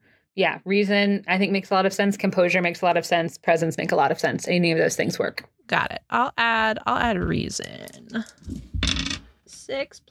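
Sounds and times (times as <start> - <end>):
speech: 0.4 - 8.8, 9.7 - 10.0
dice rattling across a hard tabletop: 8.4 - 9.3.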